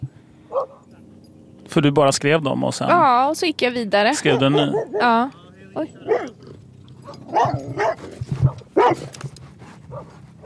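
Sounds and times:
dog barking: 0.5s - 0.8s, 4.1s - 5.2s, 5.9s - 9.2s, 9.9s - 10.4s
speech: 1.8s - 6.4s, 7.1s - 9.2s.

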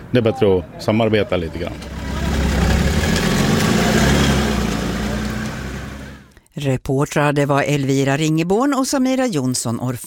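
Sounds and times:
speech: 0.1s - 2.0s, 6.6s - 10.0s
EPA tractor engine idling: 1.3s - 6.3s.

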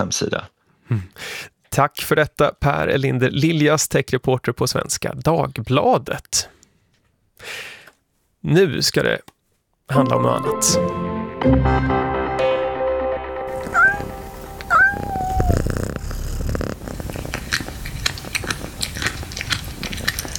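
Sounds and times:
speech: 0.0s - 6.6s, 7.4s - 7.8s, 8.4s - 12.2s
cat purring: 13.5s - 20.3s
cats meowing in short rising calls: 13.6s - 16.0s
chewing-like noises: 15.2s - 20.3s.

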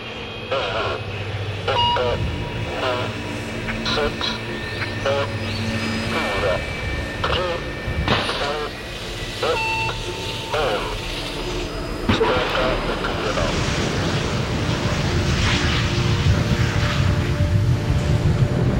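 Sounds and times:
beeping tones: 0.2s - 12.1s
rocket launching and lifting off: 12.1s - 18.6s.

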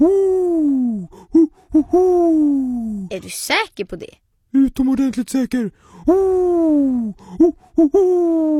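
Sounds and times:
human voice imitating an owl's hooting: 0.0s - 3.1s, 6.0s - 8.5s
speech: 3.2s - 8.5s.

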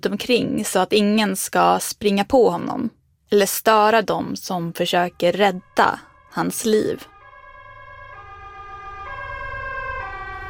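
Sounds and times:
speech: 0.0s - 7.1s
ambulance siren wailing: 5.0s - 10.4s.

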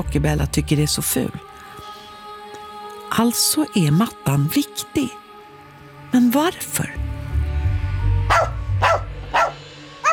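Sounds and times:
speech: 0.0s - 1.5s, 3.1s - 5.2s, 6.1s - 7.0s
poodle barking loudly: 8.3s - 10.1s.

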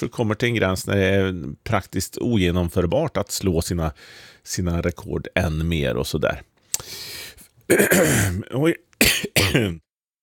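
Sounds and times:
speech: 0.0s - 9.8s
person clearing throat: 7.7s - 8.4s, 9.0s - 9.9s
person coughing: 7.7s - 8.4s, 9.0s - 9.8s.

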